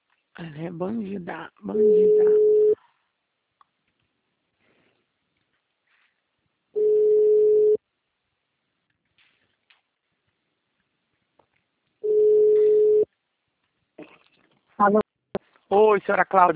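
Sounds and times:
speech: 0.4s - 2.5s, 14.8s - 15.0s, 15.7s - 16.5s
voice answering phone: 1.6s - 2.8s
telephone ringback tone during outgoing call: 1.8s - 2.8s, 6.8s - 7.8s, 12.0s - 13.1s.

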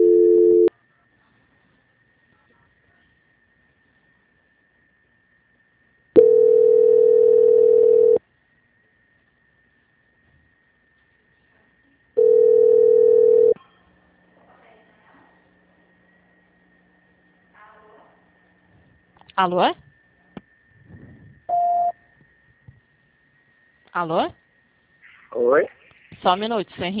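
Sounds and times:
telephone line tone bursts during a call transfer: 0.0s - 0.7s, 6.2s - 8.2s, 12.2s - 13.6s, 21.5s - 22.0s
faint constant high hum: 0.0s - 26.9s
speech: 19.4s - 19.8s, 24.0s - 24.4s, 25.3s - 26.9s.

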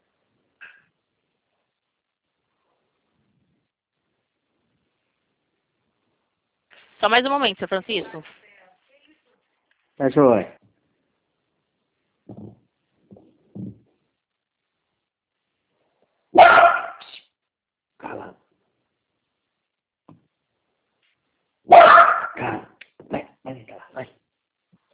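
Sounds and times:
speech: 7.0s - 8.4s, 10.0s - 10.6s, 16.4s - 16.8s, 21.7s - 24.2s
pet dog barking: 16.3s - 17.0s, 21.7s - 22.7s.

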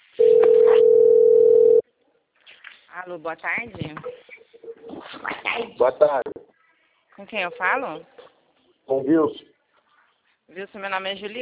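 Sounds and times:
telephone ringing tone on a call: 0.2s - 1.8s
speech: 3.0s - 4.2s, 5.6s - 6.3s, 7.2s - 8.2s, 8.9s - 9.5s, 10.5s - 11.4s.

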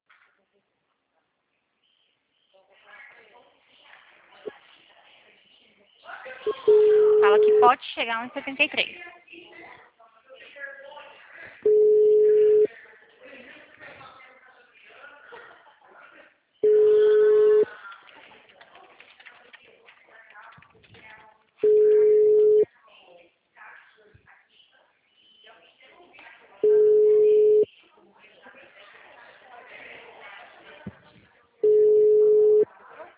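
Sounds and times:
telephone busy signal low beeps: 6.7s - 7.7s, 11.7s - 12.7s, 16.6s - 17.7s, 21.6s - 22.6s, 26.6s - 27.7s, 31.6s - 32.7s
speech: 7.2s - 9.6s.

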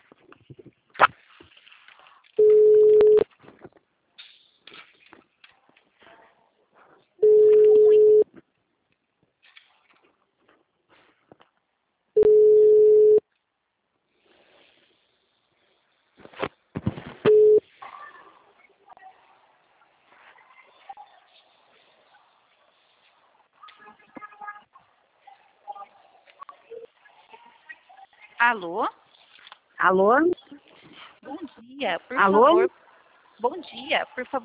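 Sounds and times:
telephone ringback tone on an outgoing call: 2.4s - 3.2s, 7.2s - 8.2s, 12.2s - 13.2s, 17.3s - 17.6s
speech: 28.4s - 29.0s, 29.8s - 30.4s, 31.3s - 32.8s, 33.4s - 34.4s.

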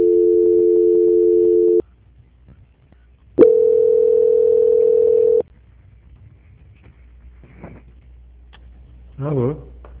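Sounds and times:
long low-pitched telephone tones during a call transfer: 0.0s - 1.8s, 3.4s - 5.4s.

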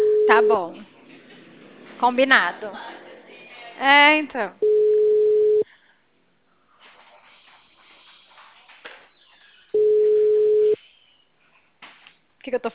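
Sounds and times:
telephone ringback tone on a telephone line while redialing: 0.0s - 0.6s, 4.6s - 5.6s, 9.8s - 10.8s
speech: 0.3s - 0.8s, 2.0s - 2.9s, 3.8s - 4.7s, 12.4s - 12.7s.

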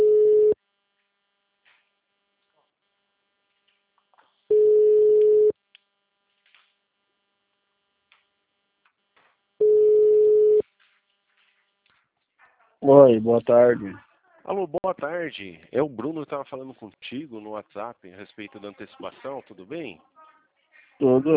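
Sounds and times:
telephone ringback tone while a call is placed: 0.0s - 0.6s, 4.5s - 5.5s, 9.6s - 10.6s
speech: 12.8s - 20.2s, 21.0s - 21.3s.

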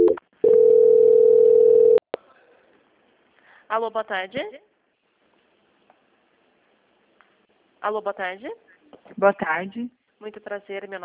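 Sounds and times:
steady single-pitched telephone tone during call transfer: 0.0s - 2.0s
speech: 3.7s - 4.7s, 7.8s - 11.0s.

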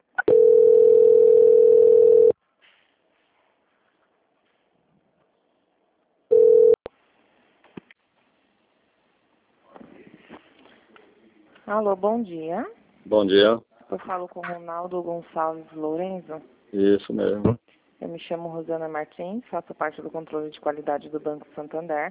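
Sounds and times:
telephone call transfer tone beeps on a bank's customer line: 0.2s - 2.4s, 6.3s - 6.8s
speech: 11.7s - 22.1s.

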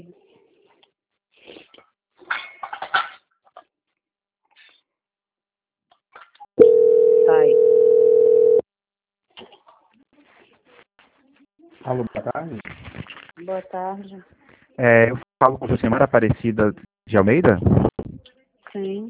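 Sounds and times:
telephone line tone while a call is transferred: 6.6s - 8.6s
speech: 11.9s - 12.8s, 13.4s - 17.8s.

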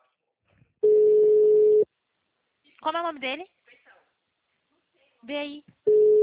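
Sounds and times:
telephone ringback beep while placing a call: 0.8s - 1.8s, 5.9s - 6.2s
speech: 2.8s - 3.6s, 5.2s - 6.1s.

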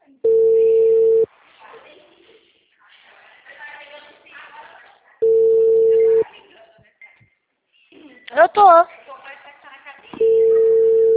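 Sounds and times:
soft talk: 0.0s - 11.1s
telephone ringback tone on an unanswered outgoing call: 0.2s - 1.3s, 5.2s - 6.2s, 10.2s - 11.1s.

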